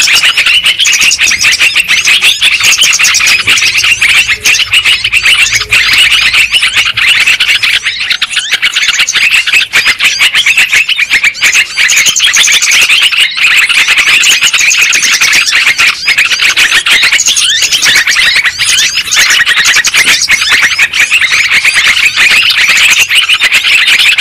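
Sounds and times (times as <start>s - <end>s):
lovebird flock chatter lure sound for trapping: 0.0s - 24.1s.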